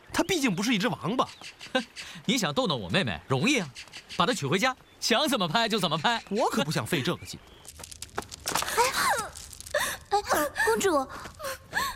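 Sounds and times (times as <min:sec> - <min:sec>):
speech: 0:00.2 - 0:07.8, 0:10.3 - 0:11.3
gasping breaths: 0:08.6 - 0:11.9
upset woman crying in wavering sobbing wails: 0:08.7 - 0:11.9.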